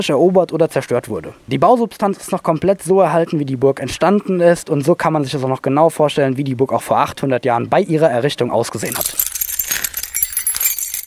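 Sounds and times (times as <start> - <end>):
speech: 0.0 - 9.8
large heavy bunch of keys jangling and rattling: 8.8 - 11.0.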